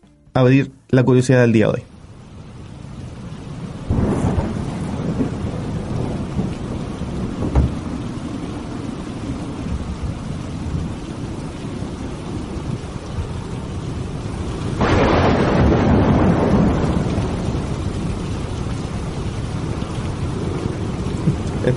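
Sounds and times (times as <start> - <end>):
speech: 0.4 - 1.9
heavy rain hissing in a thunderstorm: 0.4 - 21.7
low rumbles of thunder rolling: 2.5 - 21.7
loud thunderclap: 3.9 - 11.0, 14.8 - 21.7.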